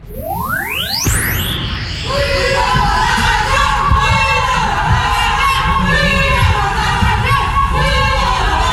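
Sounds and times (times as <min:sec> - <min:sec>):
rising whoosh: 0:00.0 - 0:06.6
young women shouting and chanting outdoors in front of a chalet: 0:02.1 - 0:08.7.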